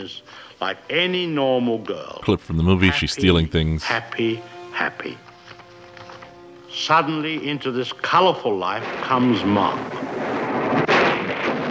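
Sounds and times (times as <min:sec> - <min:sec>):
speech: 0:00.0 - 0:05.2, 0:06.7 - 0:10.1
thunderstorm thunder rolling in a movie clip: 0:08.7 - 0:11.6.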